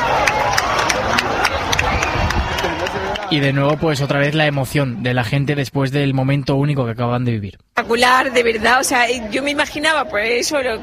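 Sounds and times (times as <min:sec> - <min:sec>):
large crowd applauding and cheering: 0:00.0 - 0:04.8
speech: 0:03.3 - 0:10.8.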